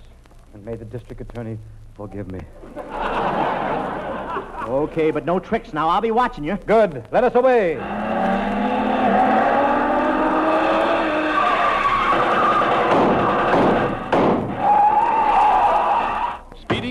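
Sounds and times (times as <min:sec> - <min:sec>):
speech: 0:00.6 - 0:08.1
laughter: 0:02.6 - 0:05.2
car engine roaring: 0:07.8 - 0:14.8
car tires squealing and skidding: 0:07.8 - 0:16.4.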